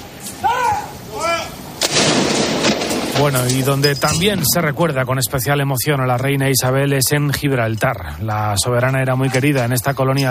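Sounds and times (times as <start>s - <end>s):
ceremonial salute cannon blast: 1.8s - 4.8s
speech: 3.2s - 10.3s.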